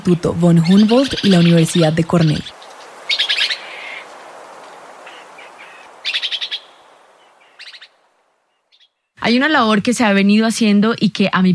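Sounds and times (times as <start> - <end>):
speech: 0.0 - 2.6, 9.3 - 11.5
soft hiss: 0.0 - 11.5
red-eyed antbird trilling: 0.5 - 9.2.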